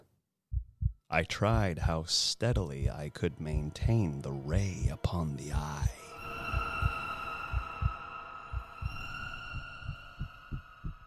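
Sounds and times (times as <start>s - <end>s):
deep thudding heartbeat in lub-dub pulses: 0.5s - 1.1s, 2.5s - 3.9s, 4.6s - 11.0s
speech: 1.1s - 6.1s
steady eerie drone humming: 4.4s - 11.0s.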